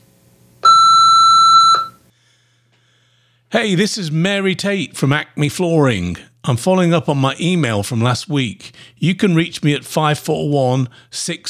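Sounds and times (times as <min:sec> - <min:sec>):
voicemail prompt electronic beep tone: 0:00.6 - 0:02.0
speech: 0:03.5 - 0:11.4.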